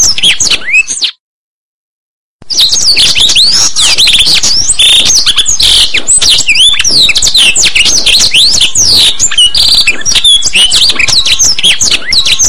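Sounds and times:
blackthroat song of high whistled slurs and scratchy buzzy notes: 0:02.5 - 0:12.4.

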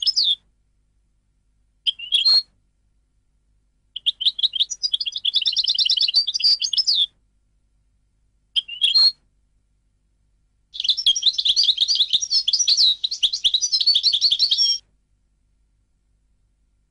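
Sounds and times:
European goldfinch twittering and trilling song: 0:00.0 - 0:00.4, 0:01.9 - 0:02.5, 0:04.0 - 0:07.1, 0:08.6 - 0:09.2, 0:10.8 - 0:14.8.

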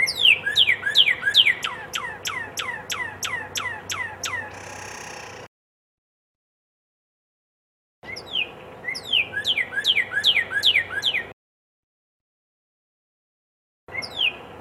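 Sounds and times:
red-crested cardinal song of sharp descending whistled notes: 0:00.0 - 0:05.4, 0:08.0 - 0:11.4, 0:13.9 - 0:14.4.

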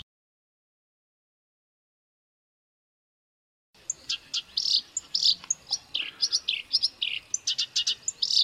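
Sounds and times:
black-browed reed warbler song: 0:03.8 - 0:08.4.

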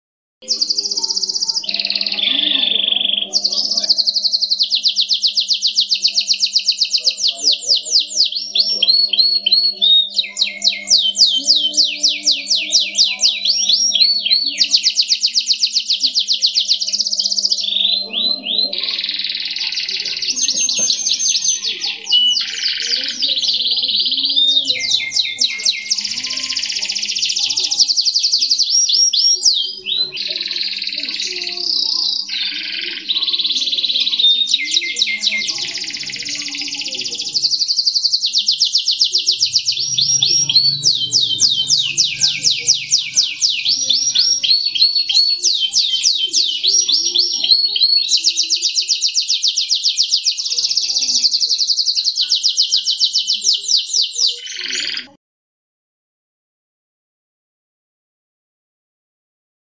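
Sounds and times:
canary: 0:00.4 - 0:55.2.

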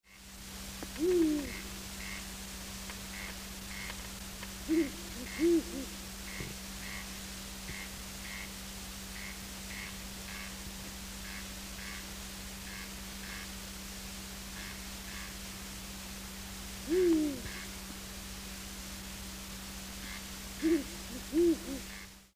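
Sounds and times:
Strix uralensis calling: 0:00.9 - 0:02.3, 0:03.1 - 0:04.0, 0:04.6 - 0:08.6, 0:14.6 - 0:15.4, 0:16.8 - 0:17.8, 0:20.0 - 0:22.2.

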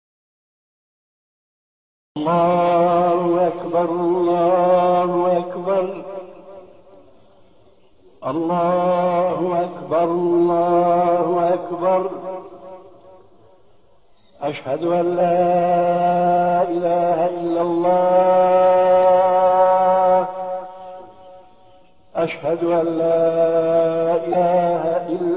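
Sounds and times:
adzan call to prayer: 0:02.2 - 0:25.3.

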